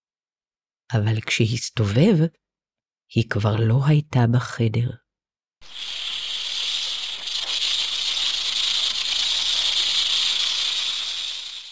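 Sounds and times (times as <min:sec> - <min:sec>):
speech: 0:00.9 - 0:02.4, 0:03.1 - 0:05.0
large snake hissing while crawling forward: 0:05.6 - 0:11.7.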